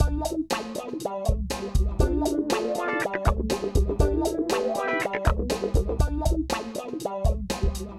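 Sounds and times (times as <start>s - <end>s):
funk music loops: 0.0s - 7.9s.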